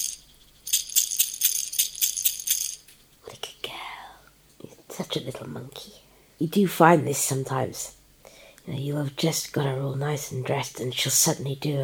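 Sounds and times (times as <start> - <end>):
baby rattle being shaken: 0.0 - 3.3
speech: 5.0 - 8.0, 8.7 - 11.8.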